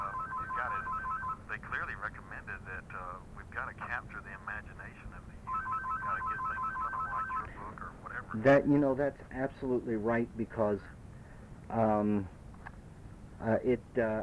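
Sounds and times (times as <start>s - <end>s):
home telephone ringing with a rapid electronic trill: 0.0s - 1.4s, 5.5s - 7.5s
speech: 1.5s - 5.3s, 8.2s - 11.0s, 11.7s - 12.4s, 13.4s - 14.2s.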